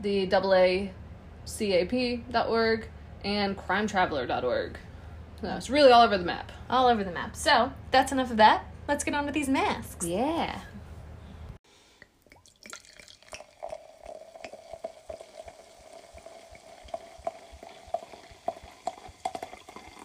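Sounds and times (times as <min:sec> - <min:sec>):
speech: 0:00.0 - 0:10.8
liquid being poured: 0:12.0 - 0:20.0.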